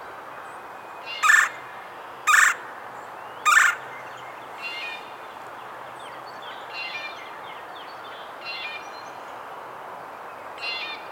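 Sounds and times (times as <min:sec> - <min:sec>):
Red-bellied Woodpecker Melanerpes carolinus harsh rolling calls: 0:01.2 - 0:01.6, 0:02.3 - 0:02.6, 0:03.5 - 0:03.8.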